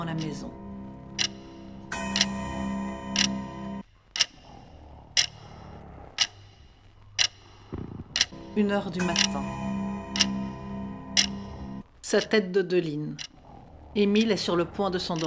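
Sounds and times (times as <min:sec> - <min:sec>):
speech: 0:00.0 - 0:00.7, 0:08.6 - 0:09.6, 0:12.1 - 0:13.4, 0:14.0 - 0:15.2
resonant humming tone: 0:00.0 - 0:03.8, 0:08.3 - 0:11.8
large living-room clock ticking: 0:00.0 - 0:15.2.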